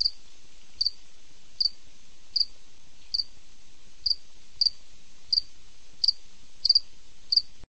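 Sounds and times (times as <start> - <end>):
cricket chirping at night: 0.0 - 0.2, 1.6 - 2.5, 3.1 - 3.3, 4.0 - 7.5
quiet background hiss: 0.0 - 7.6.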